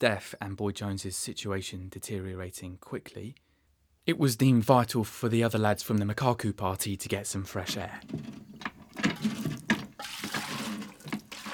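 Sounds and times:
speech: 0.0s - 3.4s, 4.0s - 9.4s
water pouring and splashing into a water tank being filled: 7.9s - 11.5s.

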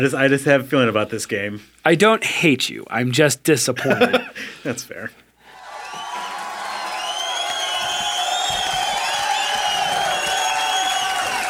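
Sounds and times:
speech: 0.0s - 5.2s
laughter: 3.8s - 4.4s
large crowd cheering and applauding: 5.5s - 11.4s
scattered whoops and high shouts: 5.5s - 11.4s.

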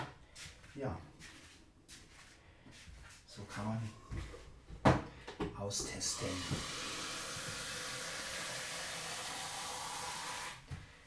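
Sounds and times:
speech: 0.8s - 1.2s, 3.4s - 4.3s, 5.6s - 6.9s
coffee machine on a cupboard brewing coffee with steam hiss and pumping: 5.9s - 10.6s.

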